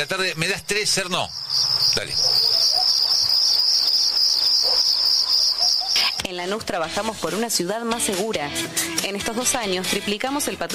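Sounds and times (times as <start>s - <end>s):
speech: 0.0s - 2.9s, 6.3s - 10.7s
high-pitched insect buzz: 1.2s - 6.3s.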